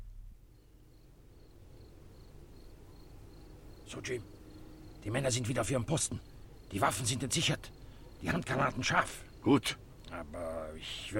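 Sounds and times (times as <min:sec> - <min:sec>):
crickets chirping softly in a garden: 0:00.0 - 0:11.1
low steady hum: 0:00.0 - 0:11.1
speech: 0:03.9 - 0:04.4, 0:05.0 - 0:11.1.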